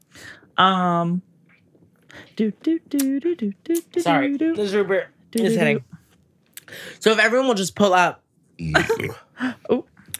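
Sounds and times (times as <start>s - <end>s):
speech: 0.6s - 1.3s, 2.4s - 6.0s, 6.7s - 9.9s
brief vocal sounds: 2.1s - 6.8s, 8.6s - 10.1s
throaty burps: 8.6s - 9.3s.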